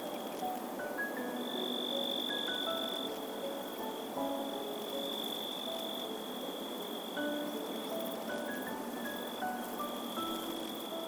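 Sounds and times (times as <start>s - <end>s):
crickets and katydids chirping by rubbing their wings: 0.0s - 11.0s
steady high nighttime insect trill: 0.0s - 11.0s.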